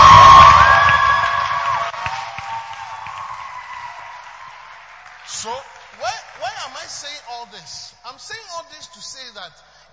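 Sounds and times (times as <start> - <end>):
crowd cheering with whoops and high-pitched shouting: 0.0 - 5.1
speech: 8.2 - 9.9.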